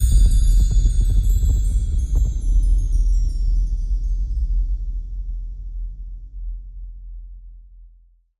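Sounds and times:
chimes: 0:00.0 - 0:04.9.

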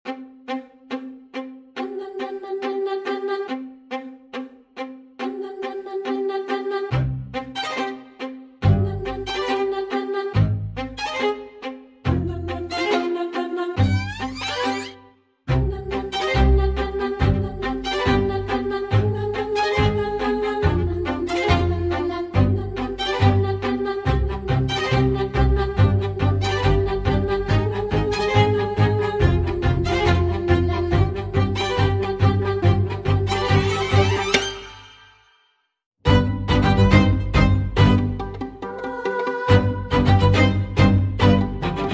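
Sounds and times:
string instruments: 0:00.0 - 0:35.2, 0:36.0 - 0:41.9
singing voice: 0:01.8 - 0:03.6, 0:05.2 - 0:07.1, 0:08.6 - 0:10.5, 0:12.1 - 0:34.3, 0:38.6 - 0:40.6, 0:41.6 - 0:41.9.

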